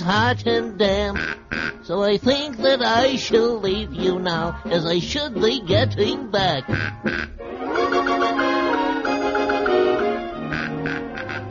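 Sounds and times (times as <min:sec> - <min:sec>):
speech: 0:00.1 - 0:07.5
hornbill giving loud nasal honking calls: 0:01.0 - 0:01.9, 0:06.6 - 0:11.4.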